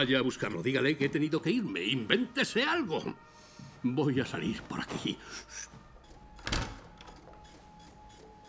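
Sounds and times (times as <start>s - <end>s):
speech: 0.0s - 5.8s
door latch rattling: 6.3s - 7.4s
door thumping shut: 6.4s - 7.2s.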